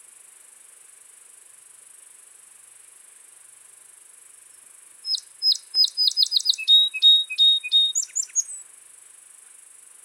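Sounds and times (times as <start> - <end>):
Melospiza melodia song sparrow song with buzzy trills: 5.1 - 8.6.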